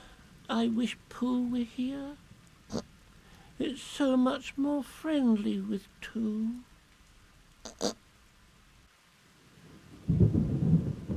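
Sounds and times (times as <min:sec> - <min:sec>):
rain: 0:00.0 - 0:11.1
speech: 0:00.5 - 0:02.9, 0:03.6 - 0:06.7, 0:07.6 - 0:08.0
thunder crackles: 0:09.6 - 0:11.1.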